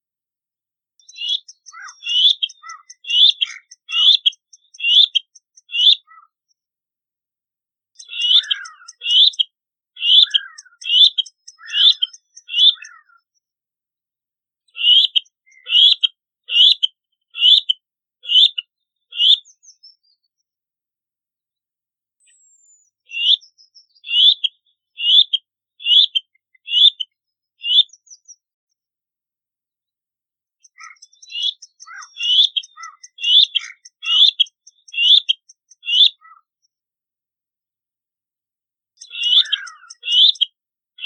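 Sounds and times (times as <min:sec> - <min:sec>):
black-necked grebe calling: 0:01.1 - 0:06.3, 0:08.0 - 0:09.4, 0:10.0 - 0:13.2, 0:14.8 - 0:19.4, 0:23.1 - 0:23.4, 0:24.0 - 0:27.0, 0:27.6 - 0:27.8, 0:30.7 - 0:36.5, 0:39.0 - 0:41.0.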